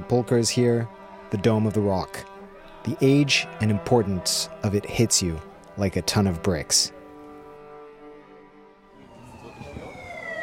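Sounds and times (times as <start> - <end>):
speech: 0.1 - 7.0
ambulance siren wailing in the street: 8.9 - 10.4.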